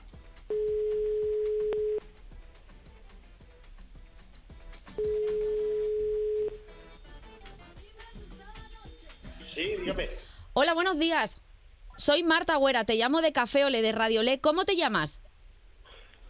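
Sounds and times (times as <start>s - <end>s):
faint music: 0.0s - 15.2s
phone line ringing on a call: 0.5s - 2.1s, 5.0s - 6.7s
speech: 10.0s - 11.4s, 12.0s - 15.2s.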